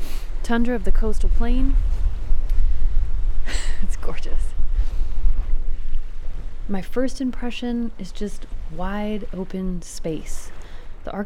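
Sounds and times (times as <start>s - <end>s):
blustery wind against the microphone on a gravelly beach in dewy wet weather: 0.0s - 11.2s
speech: 0.5s - 1.9s, 4.0s - 4.6s, 6.7s - 11.2s.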